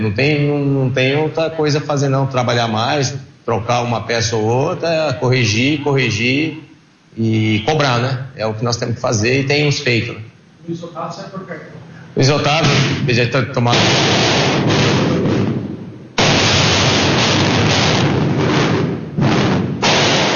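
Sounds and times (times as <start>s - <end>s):
speech: 0.0s - 6.6s, 7.2s - 15.0s
fireworks rockets set off by football fans inside a stadium: 12.6s - 13.1s, 13.7s - 20.3s.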